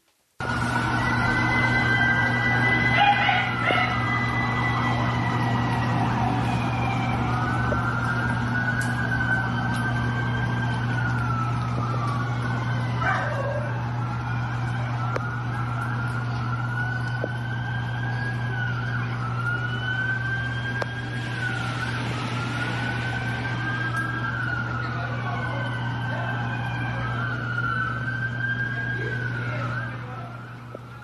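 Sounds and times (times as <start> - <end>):
emergency vehicle sirens wailing in Guanajuato: 0.4 - 31.0
low hum of traffic: 0.4 - 31.0.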